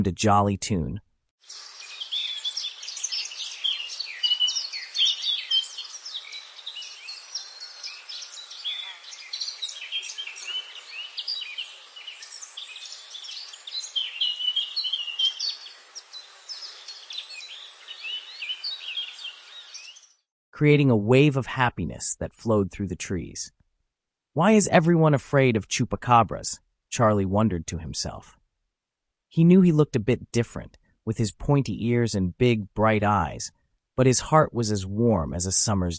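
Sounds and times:
speech: 0:00.0 - 0:01.7, 0:20.6 - 0:23.6, 0:24.4 - 0:28.4, 0:29.3 - 0:35.9
birds chirping in the trees: 0:01.5 - 0:20.2.

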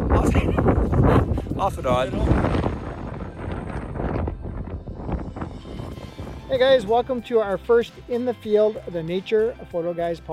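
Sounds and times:
wind blowing hard across the microphone in the mountains: 0:00.0 - 0:07.1
speech: 0:01.6 - 0:02.6, 0:06.5 - 0:10.3.

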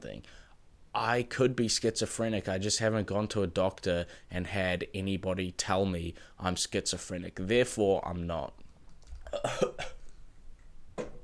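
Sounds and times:
speech: 0:00.0 - 0:08.6, 0:09.3 - 0:10.0
harsh coughs: 0:09.3 - 0:10.0.

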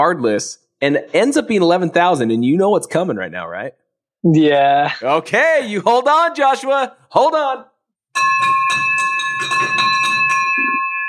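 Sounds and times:
speech: 0:00.0 - 0:09.9
bell clanging: 0:08.2 - 0:11.0.

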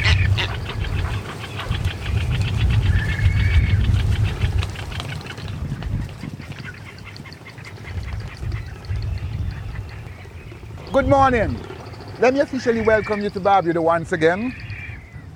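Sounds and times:
flock of seabirds, mostly frigate birds, calling and squawking: 0:00.0 - 0:15.3
boat engine droning on a trip to a frigate bird sanctuary: 0:10.5 - 0:13.9
speech: 0:11.0 - 0:14.6.

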